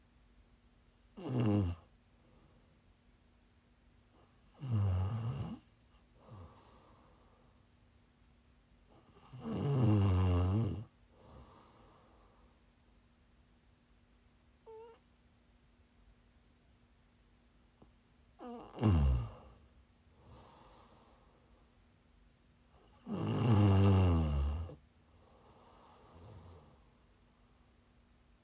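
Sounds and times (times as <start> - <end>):
snoring: 1.1 - 1.9, 4.2 - 7.1, 8.9 - 12.0, 14.7 - 15.0, 18.4 - 19.6, 22.7 - 26.9.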